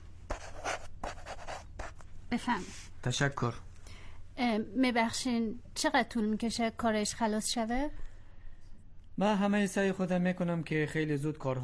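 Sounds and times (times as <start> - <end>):
pen signing a paper: 0.3 - 2.0
speech: 2.3 - 3.7, 4.4 - 8.1, 9.2 - 11.6.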